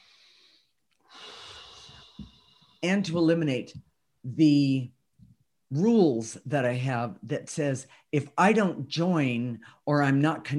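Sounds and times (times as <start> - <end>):
slow breath drawn in during a guided relaxation exercise: 0.0 - 2.8
speech: 2.8 - 5.0, 5.7 - 10.5.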